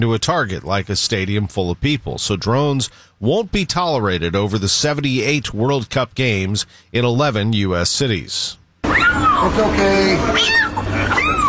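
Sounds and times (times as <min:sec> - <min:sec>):
speech: 0:00.0 - 0:11.4
terrified kitten meowing after rescue by firefighters: 0:08.8 - 0:11.4.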